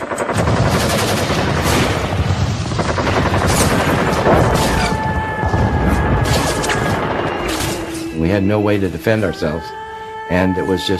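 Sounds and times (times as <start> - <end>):
gunfire of aerial strafing attack: 0.0 - 8.0
booming explosions of aerial strafing attack: 0.3 - 7.9
speech: 8.2 - 10.9.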